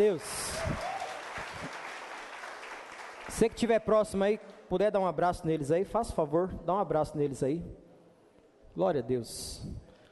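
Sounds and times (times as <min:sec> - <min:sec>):
speech: 0:00.0 - 0:00.9, 0:03.4 - 0:07.8, 0:08.8 - 0:09.8
large crowd applauding loudly: 0:00.0 - 0:03.6.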